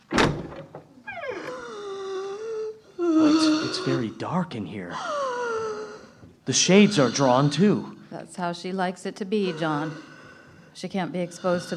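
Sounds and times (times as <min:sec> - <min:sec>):
door hinge creaking: 0:00.0 - 0:01.8
speech: 0:03.7 - 0:05.2, 0:06.4 - 0:10.1, 0:10.8 - 0:11.7.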